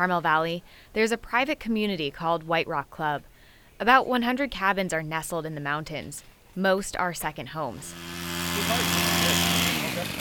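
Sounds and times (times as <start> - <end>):
speech: 0.0 - 9.6
chainsaw cutting brush and branches: 7.7 - 10.1.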